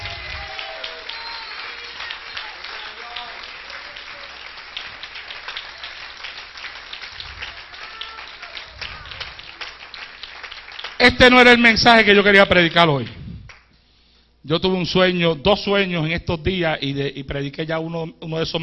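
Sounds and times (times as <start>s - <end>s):
congregation applauding in church: 0.0s - 13.7s
speech: 11.0s - 13.2s, 14.4s - 18.6s.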